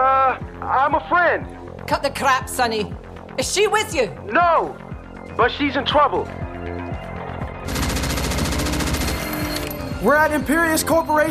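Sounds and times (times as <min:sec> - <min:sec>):
speech: 0:00.9 - 0:04.8, 0:05.4 - 0:06.8, 0:10.0 - 0:11.2
heavy gunfire during a firefight: 0:07.7 - 0:09.6.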